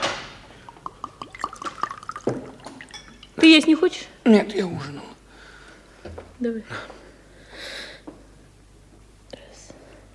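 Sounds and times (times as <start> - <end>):
water pouring from a carafe into a cup: 0.6 - 3.8
speech: 3.4 - 5.1, 6.0 - 7.0.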